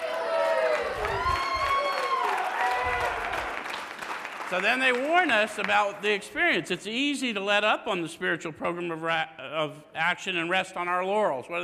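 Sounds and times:
people calling and whooping: 0.0s - 3.4s
crowd applauding: 0.0s - 6.1s
speech: 4.5s - 11.6s.

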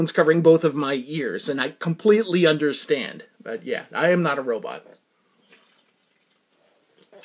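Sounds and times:
speech: 0.0s - 5.0s
sipping water: 5.3s - 7.2s.

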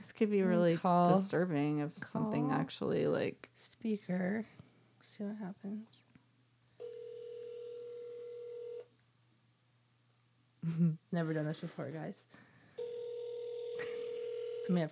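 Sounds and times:
speech: 0.2s - 6.0s, 10.6s - 12.4s, 14.7s - 14.9s
long steady electronic telephone tone: 6.8s - 8.9s, 12.8s - 14.8s.

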